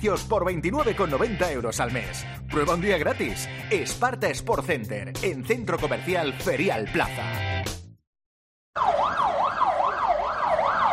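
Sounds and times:
speech: 0:00.0 - 0:07.8
emergency vehicle siren wailing: 0:08.8 - 0:10.9.

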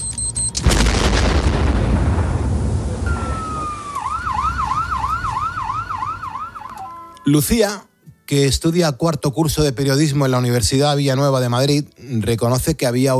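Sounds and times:
loud bomb explosion: 0:00.6 - 0:03.9
emergency siren wailing: 0:03.0 - 0:07.3
speech: 0:07.3 - 0:13.1.

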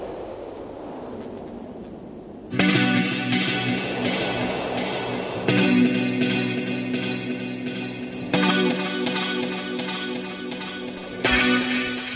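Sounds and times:
electric guitar chords drenched in reverb: 0:02.5 - 0:12.1.

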